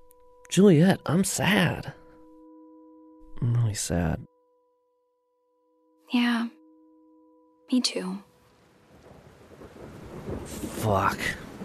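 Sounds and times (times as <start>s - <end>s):
speech: 0.5s - 2.0s, 3.4s - 4.3s, 6.1s - 6.6s, 7.7s - 8.3s, 10.5s - 11.4s
steady rain falling: 8.4s - 11.6s.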